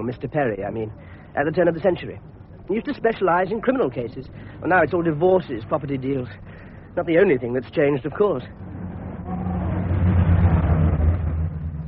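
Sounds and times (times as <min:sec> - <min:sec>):
speech: 0:00.0 - 0:08.7
city street traffic with cars and buses: 0:00.0 - 0:11.8
vehicle revving: 0:08.4 - 0:11.8.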